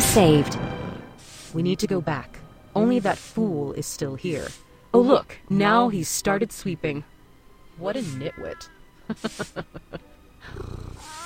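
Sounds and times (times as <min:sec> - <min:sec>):
speech: 0:00.2 - 0:00.6, 0:01.5 - 0:07.1, 0:07.8 - 0:11.1
laughter: 0:09.0 - 0:10.2
cat purring in a video game: 0:10.4 - 0:11.2.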